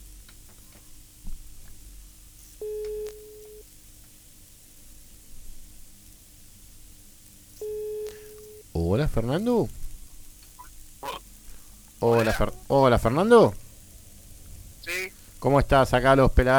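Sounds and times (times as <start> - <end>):
low hiss: 0.0 - 16.5
phone line ringback tone: 2.6 - 3.6, 7.6 - 8.6
speech: 9.2 - 9.8, 12.0 - 13.6, 15.4 - 16.5.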